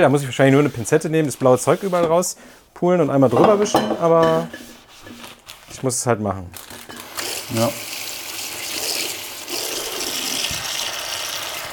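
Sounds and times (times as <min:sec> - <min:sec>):
speech: 0:00.0 - 0:06.8, 0:07.5 - 0:07.9
water running from a tap into a bathroom sink: 0:07.0 - 0:11.7.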